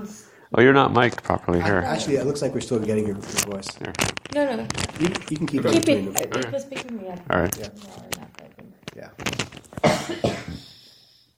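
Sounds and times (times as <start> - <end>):
speech: 0.0 - 8.2, 9.0 - 10.6
breathy noise: 0.1 - 0.5, 10.6 - 11.3
person coughing: 9.8 - 10.9.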